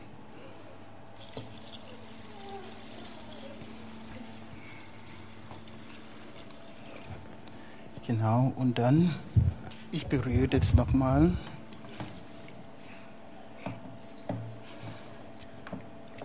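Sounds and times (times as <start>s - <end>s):
water pouring into a container: 1.2s - 7.4s
speech: 8.1s - 9.3s, 9.9s - 11.5s.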